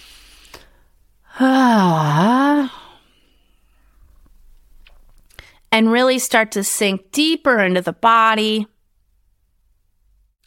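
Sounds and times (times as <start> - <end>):
deep belly breath with voiced exhale: 0.0 - 4.2
speech: 5.8 - 8.7.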